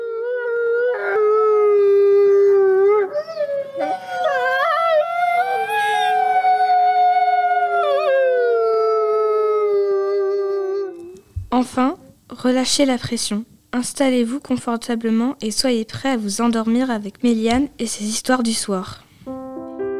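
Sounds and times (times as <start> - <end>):
several wolves howling in chorus: 0.0 - 11.0
speech: 11.6 - 19.0.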